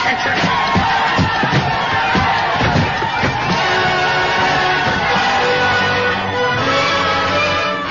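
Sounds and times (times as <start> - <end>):
crowd shouting and yelling as it pours through a gate: 0.0 - 7.8.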